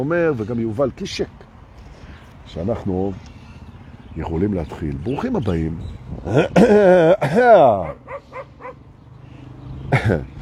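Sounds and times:
speech: 0.0s - 1.5s, 2.5s - 3.3s, 4.2s - 8.0s, 10.0s - 10.3s
man clearing his throat: 6.3s - 7.5s
dog barking and yipping: 7.8s - 8.8s.

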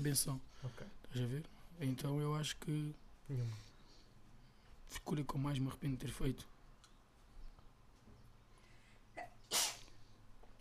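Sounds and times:
speech: 0.0s - 3.7s, 4.9s - 6.5s
person sneezing: 9.2s - 10.0s.

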